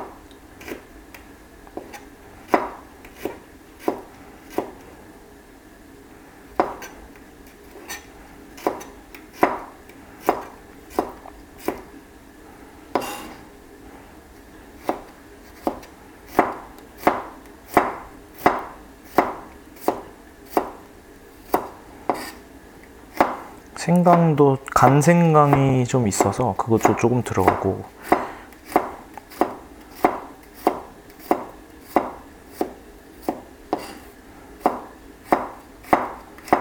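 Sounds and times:
knife finely chopping garlic on a board: 0.6 - 0.9, 1.8 - 4.8, 6.6 - 7.0, 7.6 - 11.9, 12.9 - 13.4, 14.8 - 20.8, 21.4 - 22.4, 23.1 - 36.5
speech: 23.9 - 28.0.

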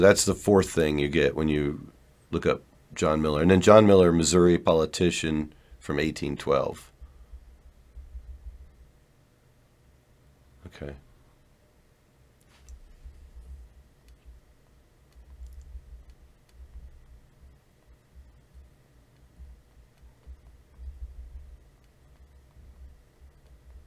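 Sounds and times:
speech: 0.0 - 6.9, 10.7 - 11.0
steady low rumbling hum: 6.8 - 11.5, 12.5 - 23.8
typing on a computer keyboard: 15.0 - 23.8.

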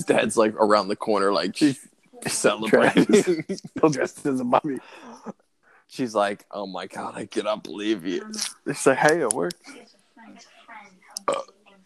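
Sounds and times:
laughter: 0.0 - 5.3, 6.0 - 9.8
speech: 0.0 - 10.6, 11.2 - 11.5
loud rough burp: 11.3 - 11.5.

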